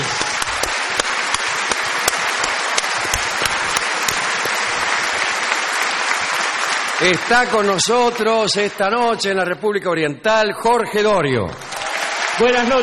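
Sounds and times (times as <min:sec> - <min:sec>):
audience applause in an opening ovation: 0:00.0 - 0:08.8, 0:11.6 - 0:12.8
speech: 0:07.0 - 0:11.7, 0:12.4 - 0:12.8.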